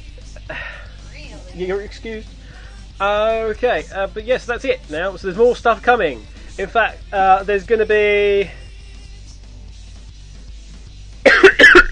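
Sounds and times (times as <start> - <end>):
speech: 1.6 - 2.4, 3.0 - 8.6
loud harsh coughs: 11.3 - 11.9.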